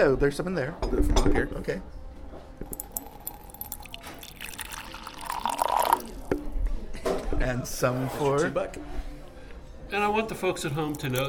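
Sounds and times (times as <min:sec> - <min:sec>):
speech: 0:00.0 - 0:02.0, 0:07.4 - 0:09.1, 0:09.9 - 0:11.2
light drips and clinks of cups: 0:02.6 - 0:06.2, 0:10.7 - 0:11.2
tea being poured into cups: 0:02.6 - 0:06.5, 0:10.5 - 0:11.2.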